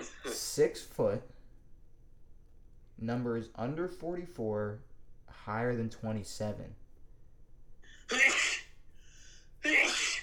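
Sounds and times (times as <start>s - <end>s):
person sneezing: 0.0s - 0.4s, 8.1s - 8.7s, 9.7s - 10.2s
speech: 0.4s - 1.4s, 3.0s - 6.8s.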